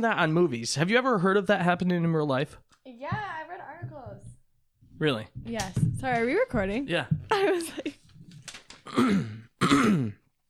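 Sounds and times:
speech: 0.0 - 3.9, 5.0 - 8.0, 8.9 - 10.2
person clearing a phlegmy throat: 8.8 - 10.3.

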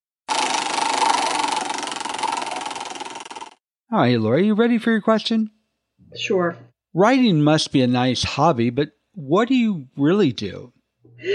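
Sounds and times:
prize wheel spinning with a whirring clatter: 0.2 - 3.6
speech: 3.9 - 11.3.

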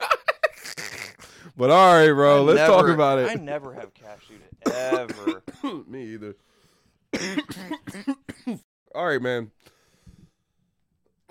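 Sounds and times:
speech: 1.5 - 6.5, 7.1 - 9.7
man coughing harshly and raspily: 4.6 - 5.9, 7.1 - 8.6.

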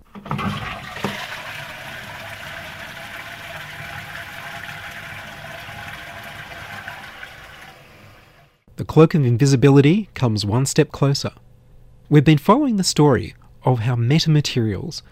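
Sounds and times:
toilet flushing: 0.0 - 8.6
speech: 8.9 - 11.4, 12.1 - 15.1.

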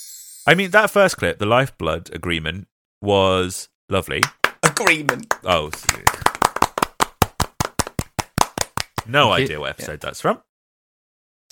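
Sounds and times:
speech: 0.5 - 6.2, 9.0 - 10.5
small group of people clapping hands: 4.2 - 9.2.

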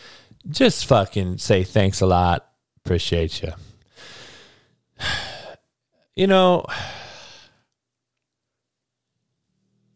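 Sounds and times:
speech: 0.4 - 3.7, 5.0 - 5.2, 6.2 - 7.0
breathy yawn: 6.7 - 7.6.

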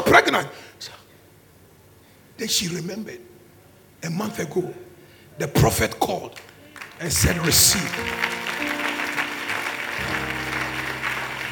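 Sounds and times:
speech: 0.1 - 1.0, 2.4 - 3.3, 4.0 - 4.8, 5.4 - 8.8
audience clapping: 6.3 - 11.5
faint sustained low musical tone: 7.6 - 11.5.

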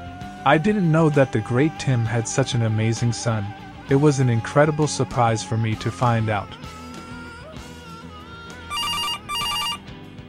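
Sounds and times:
steady music: 0.0 - 9.9
speech: 0.4 - 6.8
telephone ringing: 8.7 - 9.8.

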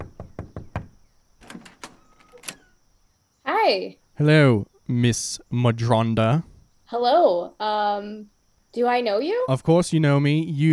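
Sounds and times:
knocking on the door of a home: 0.0 - 2.6
latch or door rattling as it is handled: 0.8 - 2.8
speech: 3.7 - 10.7.

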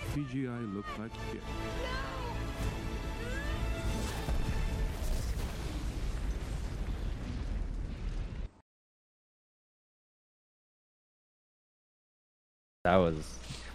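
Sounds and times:
speech: 0.2 - 3.3, 12.9 - 13.7
cinematic explosion with deep rumbling and crackling debris: 2.6 - 8.6.

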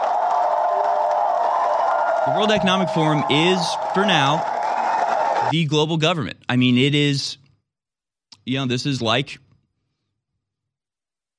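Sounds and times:
large crowd roaring and cheering: 0.0 - 5.6
speech: 2.3 - 4.5, 5.4 - 7.4, 8.5 - 9.4.

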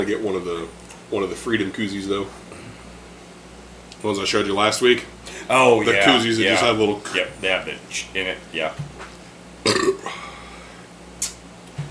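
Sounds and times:
speech: 0.0 - 2.6, 4.0 - 9.0
loud throaty burp after drinking: 9.6 - 10.2.

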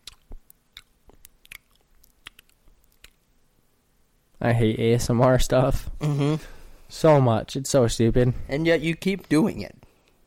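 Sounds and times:
person chewing food: 0.0 - 3.3
speech: 4.4 - 9.8.

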